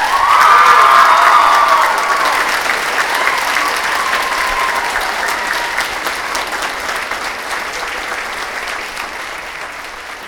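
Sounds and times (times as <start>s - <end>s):
large audience cheering with whoops and shouts: 0.0s - 6.7s
large audience applause: 0.0s - 10.2s.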